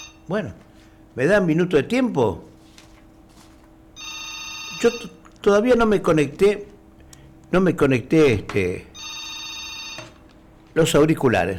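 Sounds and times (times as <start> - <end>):
mobile phone ringing with warbling melodic bursts and buzzy tone: 0.0 - 0.3, 4.0 - 5.2, 8.9 - 10.2
speech: 0.3 - 2.5, 4.8 - 6.7, 7.5 - 8.9, 10.8 - 11.5.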